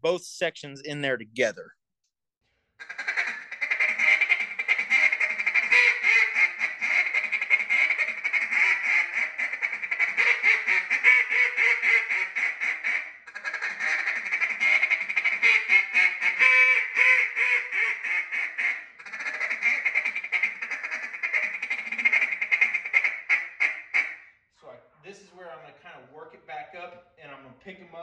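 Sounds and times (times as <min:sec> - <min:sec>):
speech: 0:00.0 - 0:01.8
duck call blown in feed-call chatter: 0:02.8 - 0:24.1.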